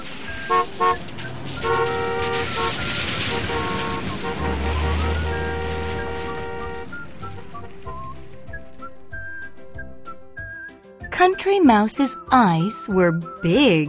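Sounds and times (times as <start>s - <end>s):
busy city traffic rumbling: 0.0s - 10.6s
car horns honking from several vehicles: 0.4s - 7.5s
speech: 11.7s - 13.8s.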